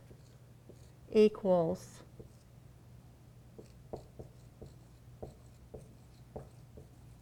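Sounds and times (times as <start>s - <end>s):
writing on paper as letters, a circle and a slash are drawn: 0.0s - 1.0s, 2.2s - 2.5s, 3.6s - 7.2s
speech: 1.1s - 2.0s.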